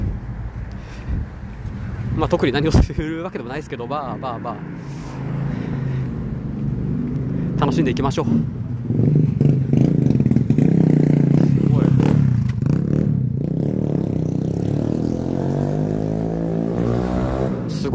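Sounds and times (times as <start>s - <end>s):
speech: 2.2s - 5.3s, 7.6s - 9.2s
motorcycle roaring past: 3.8s - 17.9s.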